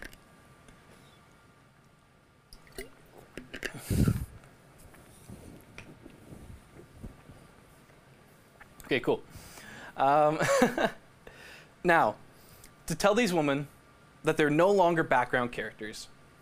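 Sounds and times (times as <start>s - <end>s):
faint liquid sloshing: 2.5s - 7.2s
person drinking water: 2.6s - 7.4s
squishy mouth sounds: 3.6s - 4.4s
speech: 8.9s - 11.0s, 11.8s - 12.2s, 12.9s - 16.2s.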